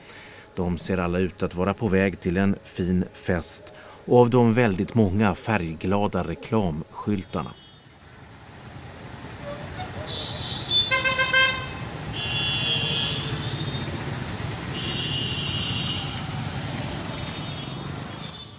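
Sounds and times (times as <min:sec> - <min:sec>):
dense rumble of rush-hour traffic: 0:00.0 - 0:18.5
speech: 0:00.6 - 0:07.6
car horns honking in rush-hour traffic: 0:09.4 - 0:18.5.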